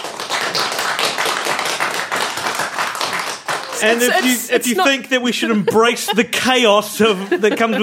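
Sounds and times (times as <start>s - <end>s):
crowd clapping: 0.0s - 5.1s
laughter: 3.6s - 7.8s
speech: 3.8s - 7.8s.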